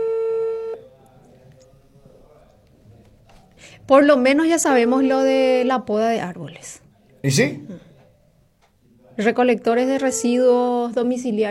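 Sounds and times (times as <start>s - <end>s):
electronic telephone ringing tone: 0.0s - 0.8s
speech: 3.9s - 7.9s, 9.2s - 11.4s.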